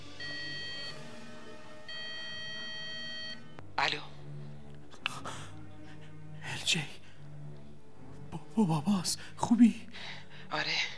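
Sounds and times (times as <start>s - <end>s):
electronic mobile phone ringtone as a call is placed: 0.2s - 1.0s, 1.9s - 3.6s
speech: 3.8s - 4.2s, 6.7s - 7.0s, 8.6s - 10.9s.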